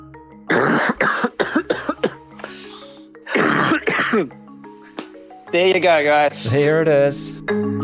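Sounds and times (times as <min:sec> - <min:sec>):
person coughing harshly: 0:00.5 - 0:04.4
speech: 0:01.0 - 0:01.6, 0:04.2 - 0:04.4, 0:05.5 - 0:07.7.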